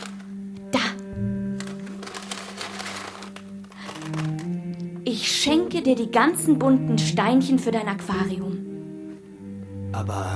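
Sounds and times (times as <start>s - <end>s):
plastic pet-shop bag crinkling and rustling: 0.0s - 0.2s, 1.5s - 4.6s
speech: 5.1s - 8.6s, 10.0s - 10.3s.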